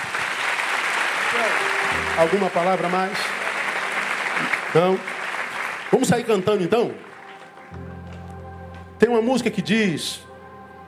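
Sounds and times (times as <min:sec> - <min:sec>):
audience applauding: 0:00.0 - 0:08.2
speech: 0:01.4 - 0:03.4, 0:04.4 - 0:05.2, 0:05.9 - 0:07.1, 0:09.0 - 0:10.3.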